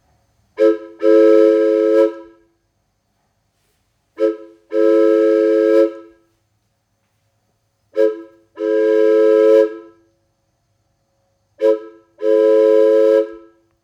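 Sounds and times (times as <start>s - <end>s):
locomotive signal whistle: 0.6s - 2.4s, 4.2s - 6.2s, 7.9s - 10.0s, 11.6s - 13.7s.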